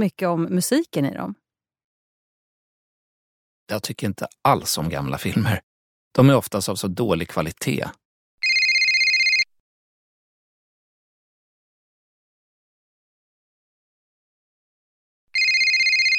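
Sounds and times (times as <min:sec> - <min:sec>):
speech: 0:00.0 - 0:01.4, 0:03.7 - 0:08.0
mobile phone ringtone ringing: 0:08.4 - 0:09.5, 0:15.4 - 0:16.1.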